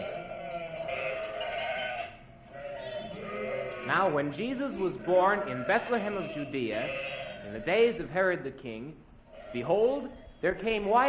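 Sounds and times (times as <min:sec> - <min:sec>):
sheep bleating: 0:00.0 - 0:07.9, 0:09.3 - 0:10.5
speech: 0:03.9 - 0:11.0.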